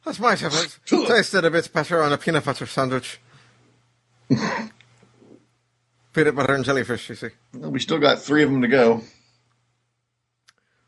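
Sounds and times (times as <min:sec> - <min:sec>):
speech: 0:00.0 - 0:03.3, 0:04.3 - 0:04.8, 0:06.2 - 0:09.2
low steady hum: 0:00.0 - 0:10.8
harsh throaty cough: 0:04.3 - 0:04.8.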